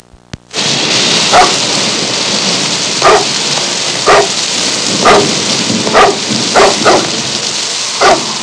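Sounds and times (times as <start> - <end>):
thunderstorm: 0.6 - 8.4
dog barking in a thunderstorm: 1.3 - 1.6, 3.0 - 3.4, 4.0 - 4.4, 5.0 - 7.2, 8.0 - 8.3.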